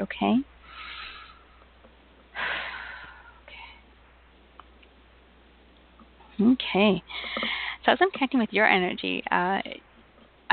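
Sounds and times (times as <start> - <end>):
speech: 0.0 - 0.5, 6.4 - 9.9
deep breathing in through the nose and out through the mouth: 0.6 - 1.7, 2.4 - 3.9, 7.1 - 7.8.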